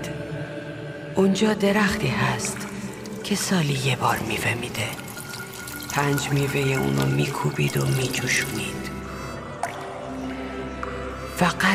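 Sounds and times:
speech: 0:01.2 - 0:02.6, 0:03.3 - 0:05.0, 0:06.0 - 0:08.9, 0:11.4 - 0:11.7
drops of liquid plinking into a glass of water: 0:02.3 - 0:11.4.

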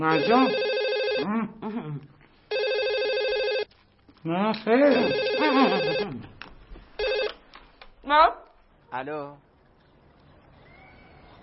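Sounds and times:
telephone ringing at home with warbling electronic trill: 0:00.0 - 0:01.2, 0:02.5 - 0:03.7, 0:04.9 - 0:06.1, 0:07.0 - 0:07.4
speech: 0:00.0 - 0:02.2, 0:04.2 - 0:06.3, 0:08.0 - 0:09.5.

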